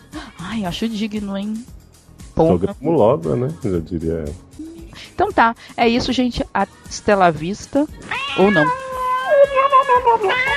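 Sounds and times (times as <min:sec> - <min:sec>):
speech: 0:00.5 - 0:01.8, 0:02.4 - 0:04.5, 0:05.2 - 0:08.8, 0:09.9 - 0:10.5
cat meowing in drawn-out wavering cries: 0:08.0 - 0:10.5.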